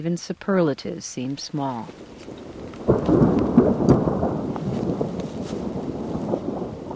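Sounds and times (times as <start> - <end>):
speech: 0.0 - 2.1
faint rain-like patter: 0.0 - 6.9
rolling thunder from an approaching storm over a remote tundra valley: 1.9 - 6.9.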